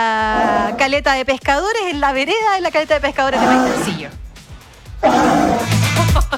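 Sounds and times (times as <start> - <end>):
sea lion roaring: 0.3 - 0.9, 3.3 - 4.2, 5.0 - 5.9
speech: 0.8 - 4.2.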